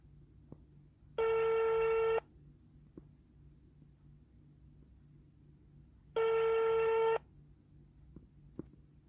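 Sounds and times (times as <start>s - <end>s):
ringback tone of an outgoing telephone call: 1.2s - 2.2s, 6.2s - 7.2s.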